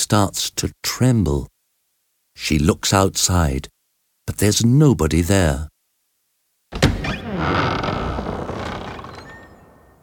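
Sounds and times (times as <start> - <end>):
speech: 0.0 - 1.5, 2.4 - 3.7, 4.3 - 5.7
door swinging open with a clunk and a creak: 6.7 - 10.0.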